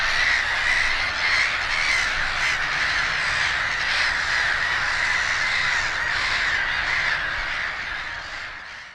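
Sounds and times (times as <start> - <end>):
black-headed gull colony chorus of rasping screechy calls: 0.0 - 8.9.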